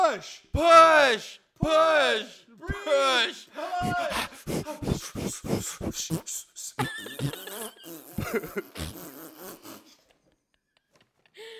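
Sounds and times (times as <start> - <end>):
speech: 0.1 - 9.8
breathy sound: 3.5 - 10.2
laughter: 3.6 - 5.0, 6.8 - 11.5
loud sputtering fart: 5.6 - 10.0.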